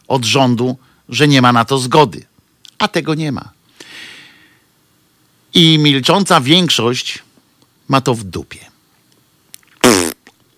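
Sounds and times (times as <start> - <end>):
speech: 0.1 - 3.6, 5.5 - 7.3, 7.9 - 8.7
mouth imitation of a fart blown with the lips: 9.7 - 10.4.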